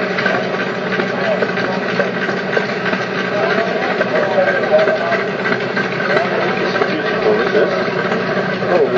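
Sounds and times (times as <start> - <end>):
1939 Crossley stationary engine idling: 0.0 - 8.9
faint murmuring voices: 0.0 - 8.9.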